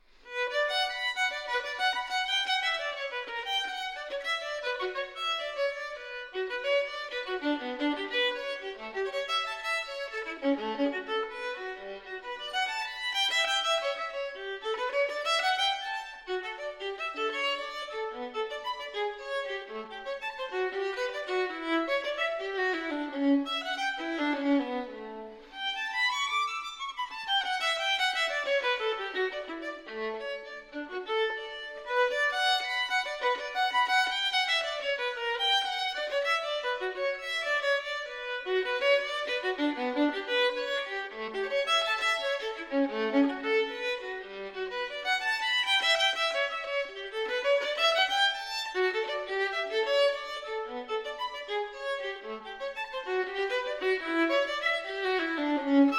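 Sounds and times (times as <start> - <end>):
solo violin partita: 0.0 - 55.9.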